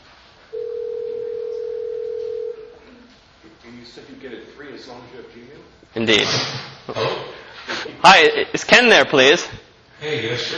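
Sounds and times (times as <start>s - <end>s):
faint hiss: 0.0s - 10.5s
phone line ringing tone from an internet call: 0.5s - 2.8s
speech: 3.8s - 10.5s.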